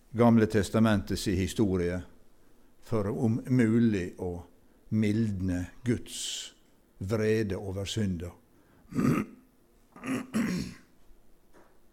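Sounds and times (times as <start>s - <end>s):
speech: 0.1s - 2.1s, 2.8s - 9.3s
person clearing throat gruffly: 8.9s - 10.9s.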